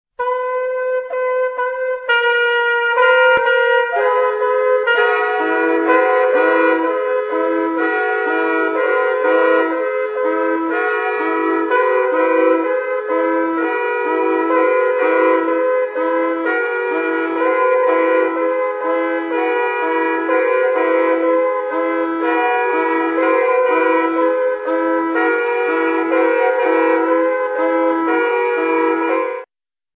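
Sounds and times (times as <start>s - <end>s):
trumpet ensemble: 0.2s - 29.5s.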